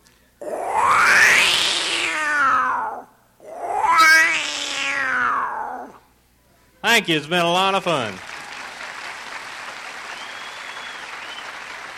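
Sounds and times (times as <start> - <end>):
Florida bobcat yowling: 0.4 - 6.0
speech: 7.0 - 8.3.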